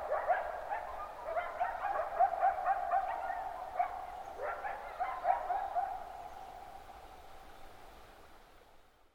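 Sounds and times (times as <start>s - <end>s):
coyote chorus yipping, barking and howling in early morning: 0.0s - 7.0s.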